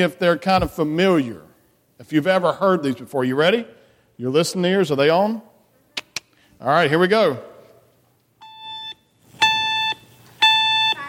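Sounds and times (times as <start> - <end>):
speech: 0.0 - 1.4, 2.0 - 5.5, 6.6 - 7.5
fire alarm high electronic beeps: 8.4 - 11.0.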